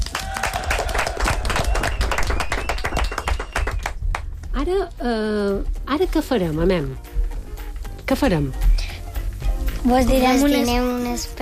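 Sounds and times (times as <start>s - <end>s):
room full of people applauding: 0.0s - 4.3s
speech: 4.7s - 7.1s, 8.1s - 8.6s, 9.8s - 11.3s.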